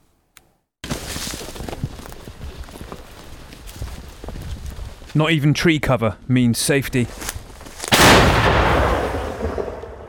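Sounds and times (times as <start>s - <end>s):
speech: 5.2s - 7.3s
artillery shell fired by Ukrainian troops: 7.9s - 10.0s.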